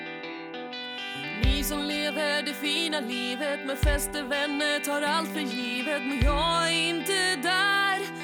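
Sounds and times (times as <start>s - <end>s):
punk rock song with distorted electric guitars: 1.1s - 2.2s, 3.8s - 5.2s, 6.0s - 7.6s
speech: 1.7s - 8.1s.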